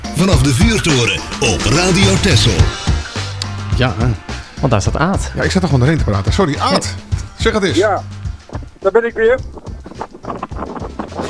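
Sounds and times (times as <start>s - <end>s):
speech: 0.2s - 2.8s, 3.8s - 9.6s
wind buffeting an outdoor microphone: 8.4s - 11.2s.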